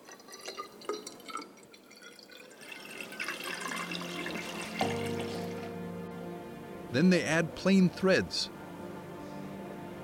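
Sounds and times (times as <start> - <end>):
water dripping into a dye cylinder: 0.0 - 5.7
speech: 7.0 - 8.6.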